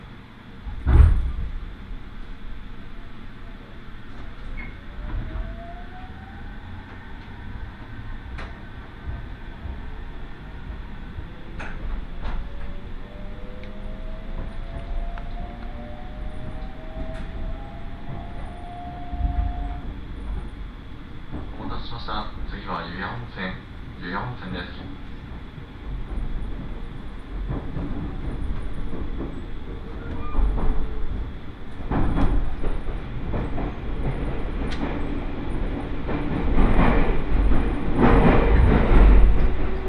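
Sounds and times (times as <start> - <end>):
train wheels rumbling inside a train car: 0.0 - 39.8
brief squeal: 30.0 - 30.6.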